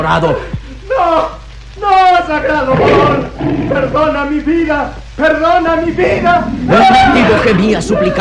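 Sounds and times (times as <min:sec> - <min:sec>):
speech: 0:00.0 - 0:08.1
tiger roaring: 0:02.4 - 0:04.2, 0:05.8 - 0:07.7.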